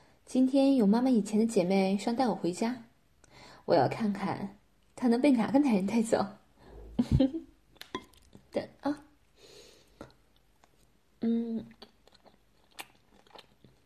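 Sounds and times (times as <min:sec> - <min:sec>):
speech: 0:00.3 - 0:02.9, 0:03.7 - 0:06.4, 0:07.0 - 0:07.5, 0:08.5 - 0:09.0, 0:11.2 - 0:11.8
someone chewing and biting while eating a meal: 0:11.6 - 0:13.8.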